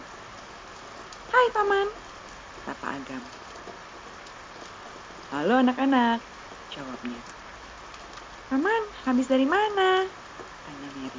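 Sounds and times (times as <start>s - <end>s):
steady rain falling: 0.0s - 11.1s
speech: 1.5s - 2.0s, 2.8s - 3.4s, 5.3s - 7.4s, 8.5s - 11.1s.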